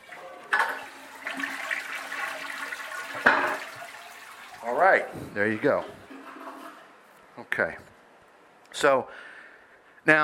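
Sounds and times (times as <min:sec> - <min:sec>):
toilet flushing: 0:00.0 - 0:06.9
speech: 0:04.9 - 0:06.0, 0:07.6 - 0:07.9, 0:08.8 - 0:09.3, 0:10.0 - 0:10.2.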